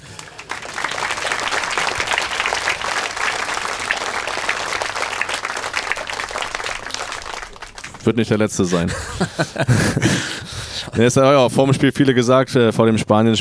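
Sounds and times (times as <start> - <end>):
audience applause: 0.0 - 8.7
speech: 8.1 - 13.4
laughter: 8.5 - 10.9.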